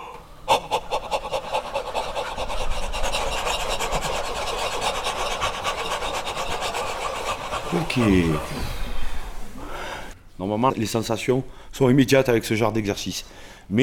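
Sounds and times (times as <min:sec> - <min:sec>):
open-throat panting breaths as a vocal exercise: 0:00.0 - 0:09.3
speech: 0:07.7 - 0:08.8, 0:10.4 - 0:13.8.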